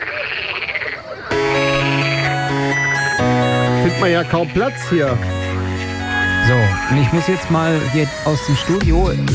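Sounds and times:
frog croaking in buzzy pulses: 0:00.0 - 0:02.5, 0:03.7 - 0:05.3
loud steady musical tone: 0:01.3 - 0:09.3
speech: 0:04.0 - 0:05.4, 0:06.4 - 0:09.3.

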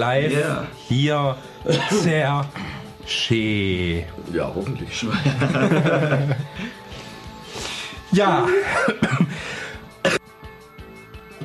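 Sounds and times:
speech: 0:00.0 - 0:06.8, 0:08.1 - 0:09.1
person coughing: 0:01.7 - 0:02.1, 0:08.5 - 0:09.4, 0:10.0 - 0:10.3
laughter: 0:01.7 - 0:02.4, 0:05.0 - 0:06.8, 0:08.4 - 0:09.4.

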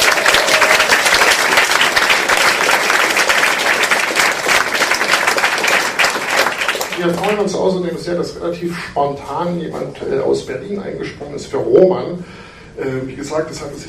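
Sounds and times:
audience applause for a singer being introduced on stage: 0:00.0 - 0:07.4
speech: 0:07.0 - 0:13.8.

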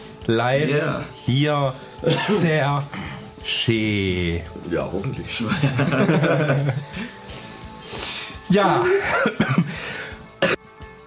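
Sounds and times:
speech: 0:00.2 - 0:07.2, 0:08.5 - 0:09.6
person coughing in a live radio studio: 0:02.0 - 0:02.5, 0:08.8 - 0:09.8, 0:10.4 - 0:10.6
laughter: 0:02.0 - 0:02.7, 0:05.4 - 0:07.2, 0:08.8 - 0:09.7.

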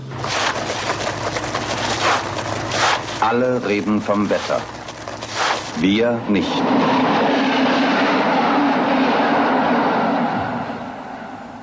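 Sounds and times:
train running on rails: 0:00.0 - 0:11.6
speech: 0:03.3 - 0:04.8, 0:05.8 - 0:06.9.

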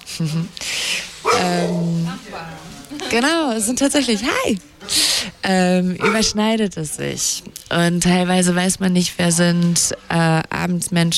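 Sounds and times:
speech: 0:00.2 - 0:00.6, 0:01.3 - 0:11.1
dogs barking and whining: 0:01.2 - 0:02.2, 0:06.0 - 0:06.6
drawn-out voiced calls: 0:06.0 - 0:06.5.

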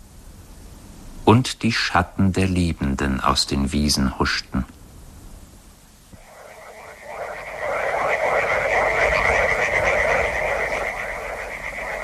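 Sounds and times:
speech: 0:01.3 - 0:04.8
chorus of frogs croaking in backwater ponds: 0:06.2 - 0:12.0.

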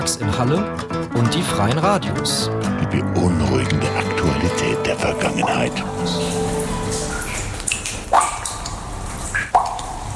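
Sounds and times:
speech: 0:00.1 - 0:06.4
water drops falling in limestone caves: 0:03.8 - 0:10.1.

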